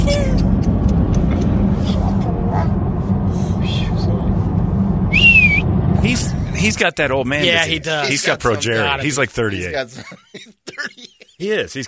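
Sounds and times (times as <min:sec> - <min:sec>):
road rumble inside a moving car: 0:00.0 - 0:09.2
man giving a short rising whistle in a car: 0:05.1 - 0:05.7
speech: 0:06.6 - 0:11.8.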